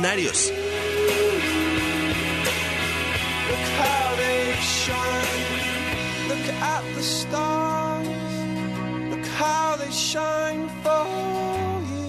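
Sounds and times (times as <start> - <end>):
speech: 0.0 - 0.9, 6.4 - 8.2, 9.4 - 11.7
slow pop song from a film soundtrack: 0.0 - 12.0.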